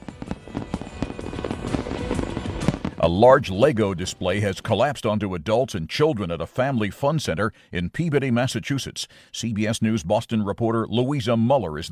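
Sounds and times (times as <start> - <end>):
New Year fireworks show crackling pops and thuds: 0.0 - 5.2
speech: 3.0 - 11.8.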